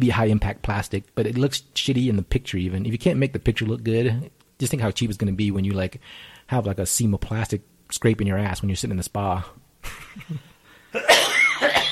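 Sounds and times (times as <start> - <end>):
speech: 0.0 - 11.3
harsh raspy cough: 10.9 - 11.9.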